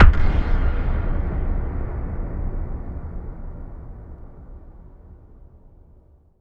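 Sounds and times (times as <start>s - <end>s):
reverberant kick drums: 0.0s - 4.2s.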